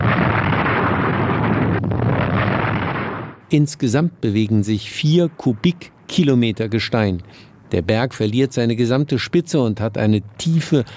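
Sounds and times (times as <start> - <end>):
volcanic eruption explosion roar from a pent-up magma bubble releasing: 0.0 - 3.4
speech: 3.5 - 10.9.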